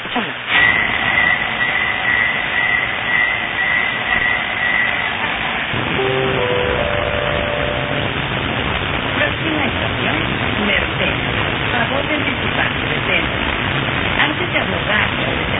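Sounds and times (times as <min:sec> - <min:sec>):
rail rumble and hiss inside a moving train: 0:00.0 - 0:15.5
new metro line one next-station arrival chime with stepped electronic tones: 0:06.0 - 0:08.2.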